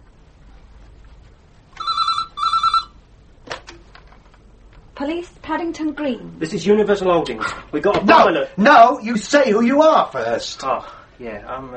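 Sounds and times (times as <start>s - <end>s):
telephone ringing after dialling a police station: 1.7s - 3.0s
speech: 5.0s - 11.7s.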